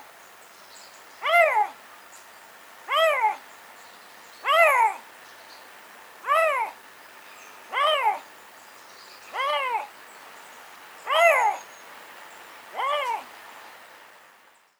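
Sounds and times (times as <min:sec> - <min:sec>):
male Eurasian lynx call series: 0:01.2 - 0:01.8, 0:02.9 - 0:03.5, 0:04.4 - 0:05.1, 0:06.2 - 0:06.8, 0:07.7 - 0:08.3, 0:09.3 - 0:09.9, 0:11.0 - 0:11.7, 0:12.7 - 0:13.3.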